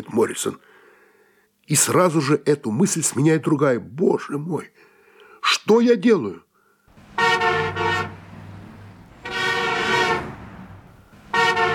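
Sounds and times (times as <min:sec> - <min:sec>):
speech: 0:00.0 - 0:00.7, 0:01.7 - 0:04.9, 0:05.6 - 0:06.5
car horns honking impatiently in stalled traffic: 0:06.9 - 0:11.7
low engine rumble in stalled traffic: 0:06.9 - 0:11.7.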